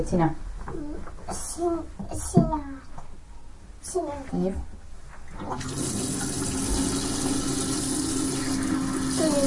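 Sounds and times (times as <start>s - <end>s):
speech: 0.0s - 2.9s, 3.8s - 4.8s, 5.4s - 7.8s, 9.2s - 9.4s
tap water running while washing hands: 5.3s - 9.4s.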